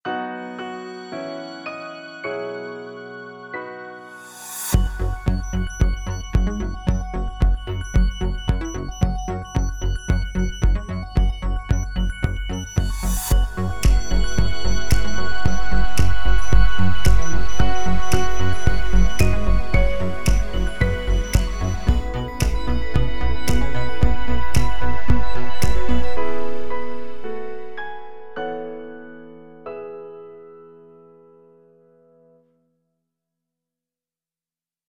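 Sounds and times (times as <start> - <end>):
long phone ringtone: 0.3 - 26.4.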